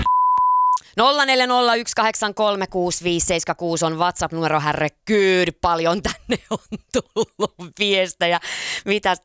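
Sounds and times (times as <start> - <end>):
censor bleep tone over song lyrics: 0.0 - 0.8
speech: 1.0 - 9.2.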